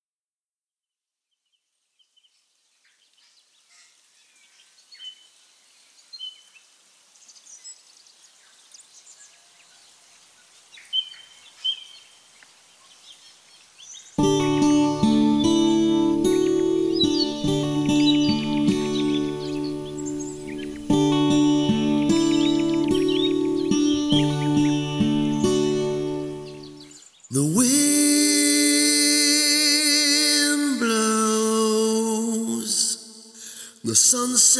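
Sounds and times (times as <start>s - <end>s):
ambient music: 14.2s - 26.8s
lead vocals: 14.2s - 34.5s.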